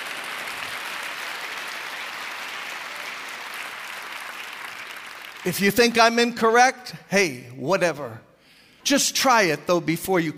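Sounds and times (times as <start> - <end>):
congregation applauding during a church meeting: 0.0 - 6.3
speech: 5.4 - 10.3.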